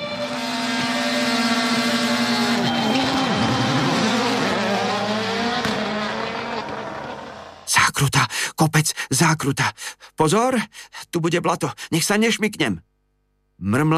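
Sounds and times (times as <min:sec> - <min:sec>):
race car engines roaring as they accelerate off the start: 0:00.0 - 0:07.7
speech: 0:08.6 - 0:12.9, 0:13.6 - 0:13.9.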